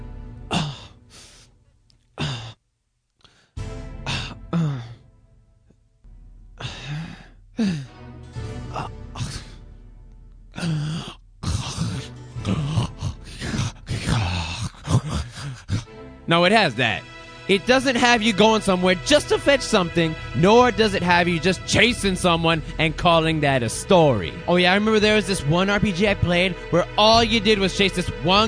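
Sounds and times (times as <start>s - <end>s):
person imitating a man breathing heavily: 0.5s - 1.5s, 2.2s - 2.6s, 3.2s - 5.0s, 6.6s - 7.9s, 8.6s - 9.6s, 10.5s - 16.0s
speech: 16.3s - 28.4s.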